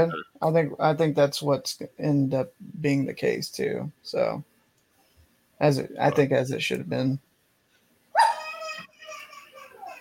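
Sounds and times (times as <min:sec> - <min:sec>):
speech: 0:00.0 - 0:04.5, 0:05.6 - 0:07.3
dog yelping: 0:08.2 - 0:08.6.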